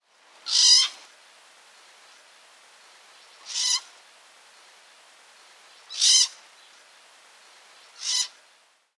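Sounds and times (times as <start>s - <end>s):
pine marten screeching: 0.5s - 0.9s, 3.5s - 3.8s, 5.9s - 6.3s, 8.0s - 8.4s.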